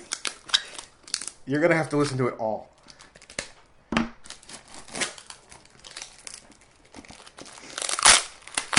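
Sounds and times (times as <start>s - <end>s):
packing tape peeled and torn open on an HP toner box: 0.0s - 1.4s, 4.2s - 8.7s
speech: 1.5s - 2.7s.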